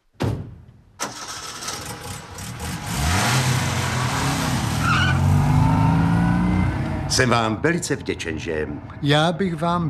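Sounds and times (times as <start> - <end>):
early motor car engine starting and running: 1.0 - 7.6
speech: 7.2 - 9.8.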